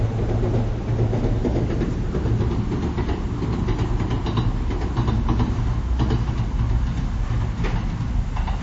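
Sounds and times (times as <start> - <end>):
two-car electric train crossing a green steel railway bridge: 0.0 - 8.6.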